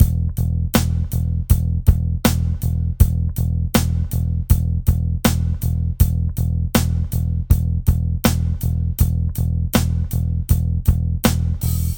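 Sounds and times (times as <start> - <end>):
backing track: 0.0 - 11.9
modal rock guitar improvisation in E: 11.6 - 11.9.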